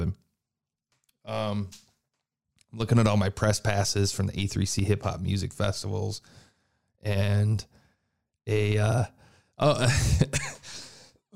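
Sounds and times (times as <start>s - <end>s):
speech: 1.2s - 1.9s, 2.7s - 6.4s, 7.0s - 7.8s, 8.5s - 10.7s
person coughing at a microphone: 9.8s - 10.8s.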